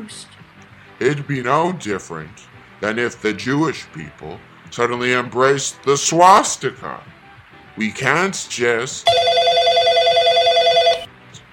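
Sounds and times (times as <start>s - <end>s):
speech: 0.0s - 0.4s, 1.0s - 7.2s, 7.8s - 9.3s
telephone ringing for an incoming caller: 9.0s - 11.1s.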